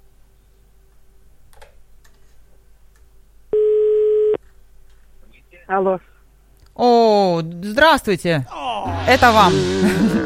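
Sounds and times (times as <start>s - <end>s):
faint hum: 0.0s - 10.2s
loud steady telephone ringback tone: 3.6s - 4.4s
speech: 5.7s - 6.1s, 6.8s - 10.2s.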